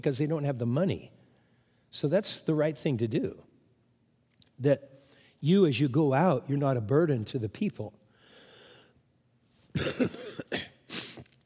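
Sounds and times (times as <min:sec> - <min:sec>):
speech: 0:00.0 - 0:01.2, 0:01.9 - 0:03.5, 0:04.6 - 0:08.0, 0:09.7 - 0:10.0
man coughing into a microphone: 0:09.7 - 0:11.3.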